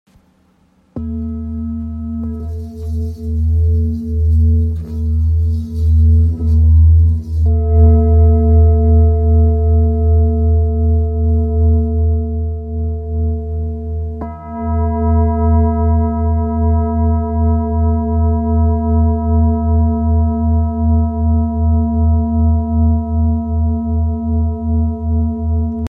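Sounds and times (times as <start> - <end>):
therapeutic singing bowl tuned to A sharp: 1.0 - 25.8.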